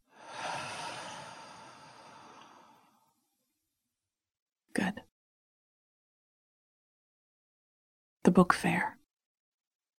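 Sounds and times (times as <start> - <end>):
soft human breathing during a guided relaxation exercise: 0.0 - 3.1
speech: 8.4 - 9.0.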